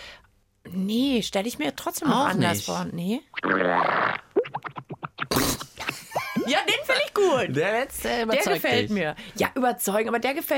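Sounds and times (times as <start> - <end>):
speech: 0.8 - 4.2, 6.5 - 10.5
voice imitating a whale fart: 3.3 - 5.9.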